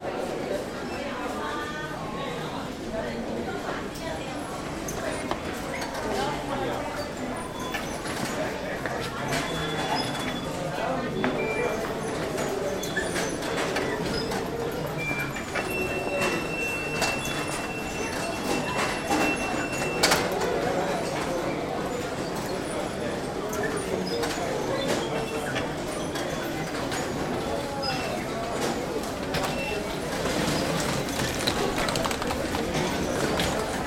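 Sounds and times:
underground station ambience by ticket barriers in London: 0.0s - 33.8s.

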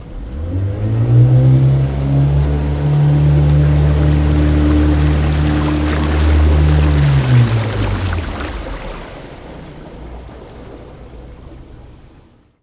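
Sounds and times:
pontoon boat driving: 0.0s - 12.6s.

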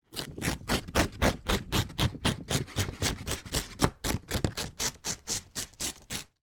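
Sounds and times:
paper ripping short and quick foley: 0.1s - 6.4s.

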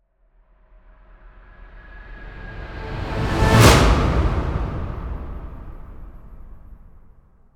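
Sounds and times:
orchestral swell to impact: 1.5s - 7.0s.

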